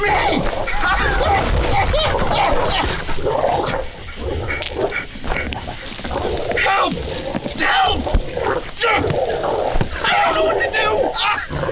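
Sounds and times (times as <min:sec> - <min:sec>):
large dog snarling and growling: 0:00.0 - 0:11.7.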